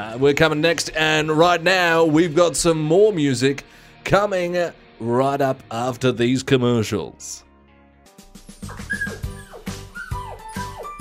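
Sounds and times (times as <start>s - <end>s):
speech: 0.0s - 7.5s
dog whimpering with falling whines: 8.6s - 10.9s.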